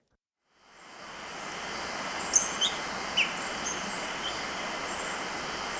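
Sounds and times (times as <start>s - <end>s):
soft background hiss: 0.6s - 5.7s
Orange-throated tanager calls in Ecuador: 0.7s - 5.7s.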